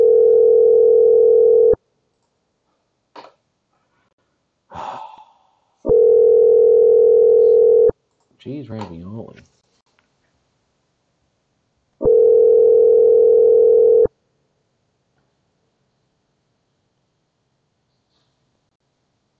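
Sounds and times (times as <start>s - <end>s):
phone ringback tone during outgoing call: 0.0s - 1.8s, 5.9s - 7.9s, 12.0s - 14.1s
person breathing: 3.7s - 5.9s
person sighing: 4.7s - 5.8s
speech: 8.4s - 9.6s.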